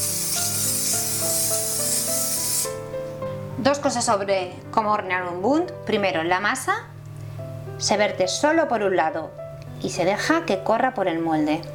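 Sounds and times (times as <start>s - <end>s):
release spray hissing onto a baking mold: 0.0s - 2.8s
soft music: 0.0s - 11.7s
speech: 3.6s - 6.9s, 7.8s - 11.7s.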